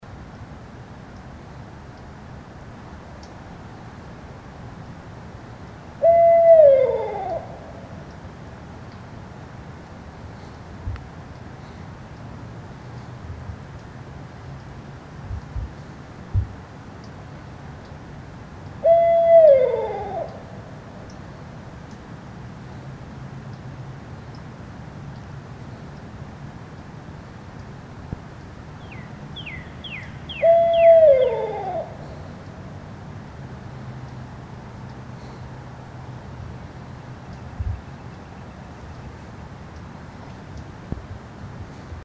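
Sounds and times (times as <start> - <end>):
Barred Owl Strix varia: 6.0 - 8.0, 18.8 - 20.5, 28.8 - 32.5.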